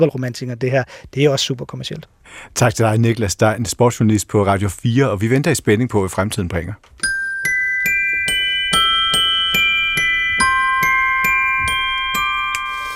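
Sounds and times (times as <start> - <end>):
speech: 0.0 - 7.2
bright glockenspiel jingle of quick struck notes: 7.0 - 12.9.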